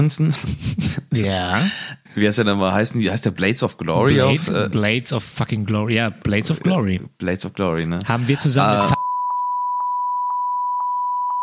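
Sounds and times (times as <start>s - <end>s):
speech: 0.0s - 9.0s
laughter: 4.0s - 4.8s, 8.1s - 9.0s
steady high-pitched censor bleep tone: 8.8s - 11.4s.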